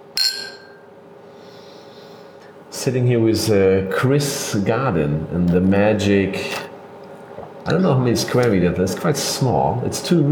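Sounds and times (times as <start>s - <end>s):
glasses clinking in a toast at a small gin distillery: 0.2s - 0.8s
speech: 2.8s - 6.6s, 7.7s - 10.2s.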